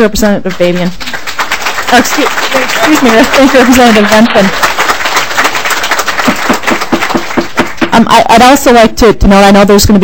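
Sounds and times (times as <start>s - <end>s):
speech: 0.0s - 1.2s, 1.9s - 4.7s, 8.0s - 10.0s
audience clapping in a committee hearing room: 0.4s - 8.4s.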